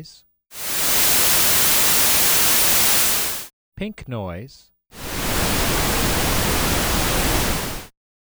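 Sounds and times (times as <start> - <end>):
noise: 0.6 - 3.5, 5.0 - 7.9.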